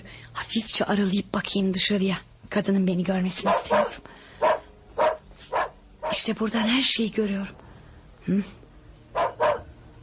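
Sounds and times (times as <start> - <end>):
speech: 0.4 - 4.6, 6.2 - 7.6, 8.2 - 8.6
dogs barking at a police scene: 3.3 - 6.4, 9.1 - 10.0.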